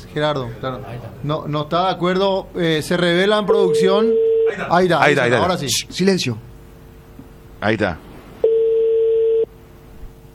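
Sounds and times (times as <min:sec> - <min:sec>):
faint low hum: 0:00.0 - 0:10.3
speech: 0:00.1 - 0:06.5, 0:07.6 - 0:08.1
telephone beep before a voicemail recording: 0:03.5 - 0:04.5, 0:08.4 - 0:09.5.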